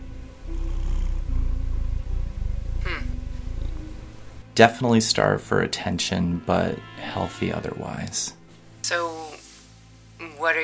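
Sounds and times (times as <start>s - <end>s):
cat purring: 0.0s - 5.6s
speech: 4.6s - 9.4s, 10.2s - 10.6s.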